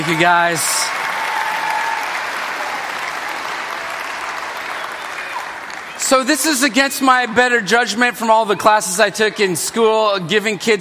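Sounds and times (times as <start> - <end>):
speech: 0.0 - 1.0, 6.1 - 10.7
crowd applauding: 0.0 - 7.3.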